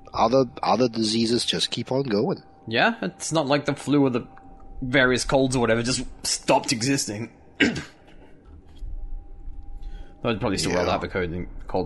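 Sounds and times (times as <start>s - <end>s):
faint low rumble: 0.0s - 11.8s
speech: 0.2s - 8.0s, 10.2s - 11.8s
person coughing: 7.6s - 8.0s.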